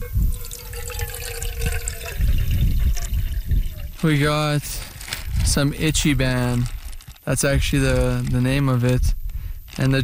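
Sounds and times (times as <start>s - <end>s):
water pouring into a container for instant noodles: 0.2s - 4.2s
speech: 4.0s - 4.9s, 5.4s - 9.2s, 9.8s - 10.0s.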